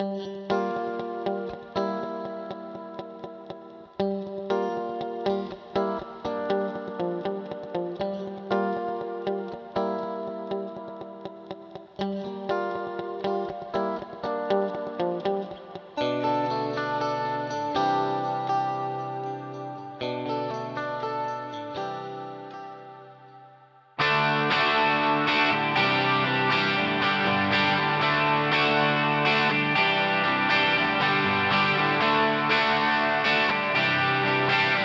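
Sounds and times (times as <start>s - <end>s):
guitar through Eventide H8000 plate chorus effect: 0.0s - 34.8s.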